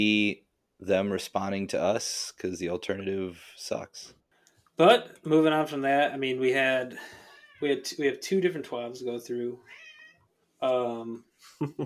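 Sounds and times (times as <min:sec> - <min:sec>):
speech: 0:00.0 - 0:04.2, 0:04.8 - 0:09.8, 0:10.6 - 0:11.8
cat meowing: 0:07.2 - 0:07.7, 0:09.6 - 0:10.3.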